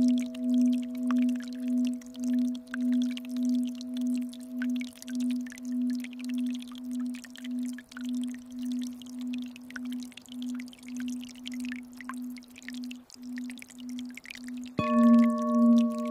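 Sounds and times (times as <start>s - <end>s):
Tibetan singing bowl ringing: 0.0s - 6.6s, 14.8s - 16.1s
soft flowing water: 0.0s - 16.1s.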